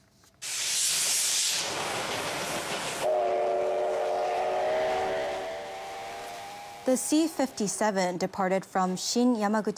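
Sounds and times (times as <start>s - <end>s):
steam locomotive hissing steam during test run: 0.4s - 7.8s
steam locomotive whistle blast: 2.6s - 7.8s
speech: 6.9s - 9.7s.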